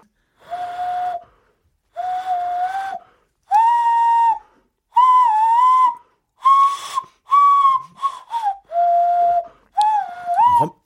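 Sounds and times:
hand whistle blown through cupped hands playing a slow tune: 0.4s - 10.8s.

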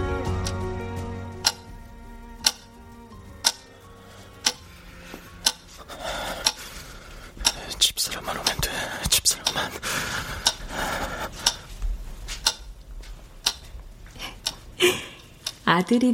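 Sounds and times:
wall clock ticking: 0.2s - 16.1s
faint breathy whispering: 7.6s - 9.8s
speech: 15.8s - 16.1s.

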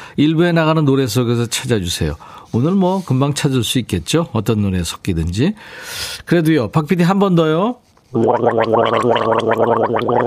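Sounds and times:
speech: 0.2s - 10.2s
throaty gargling with bubbling rattle: 8.2s - 10.2s.

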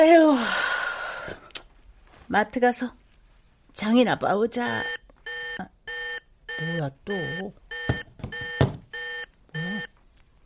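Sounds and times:
speech: 2.3s - 3.0s, 3.8s - 5.0s, 6.6s - 7.6s
phone emergency alert tone for fine dust warning: 4.8s - 9.9s.

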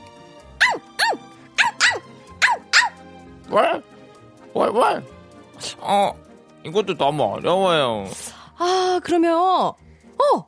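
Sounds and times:
voice imitating a happy dog yapping: 0.6s - 3.8s
speech: 3.5s - 3.9s, 4.5s - 10.4s.

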